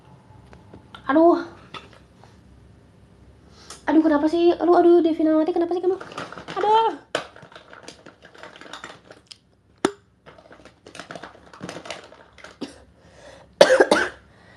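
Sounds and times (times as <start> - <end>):
speech: 1.1 - 1.5, 4.0 - 7.0
person coughing: 13.6 - 14.2.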